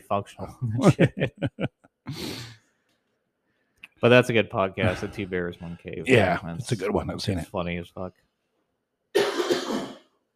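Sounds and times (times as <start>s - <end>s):
speech: 0.1s - 2.6s, 4.0s - 8.3s
laughter: 0.4s - 1.8s
single harsh raspy cough: 9.2s - 10.1s.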